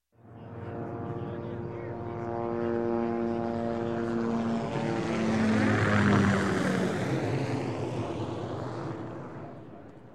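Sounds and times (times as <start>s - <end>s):
Hughes 500E helicopter passing overhead: 0.1s - 10.1s.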